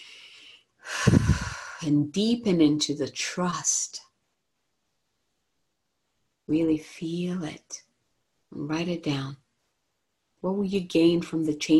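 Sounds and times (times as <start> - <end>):
deep breath in: 0.0 - 1.7
speech: 1.8 - 4.0, 6.5 - 7.8, 8.5 - 9.4, 10.4 - 11.7.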